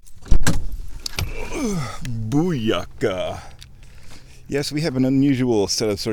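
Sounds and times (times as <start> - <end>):
car door clunks and thumps while getting out of a car: 0.2 - 1.4
speech: 1.6 - 3.5, 4.5 - 6.1.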